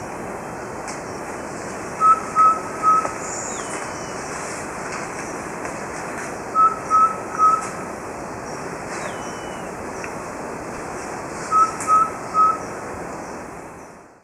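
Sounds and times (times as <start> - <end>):
constant hiss: 0.0 - 14.2
Subtropical pygmy-owl clear whistled notes in Ecuador: 2.0 - 3.1, 6.6 - 7.6, 11.5 - 12.6.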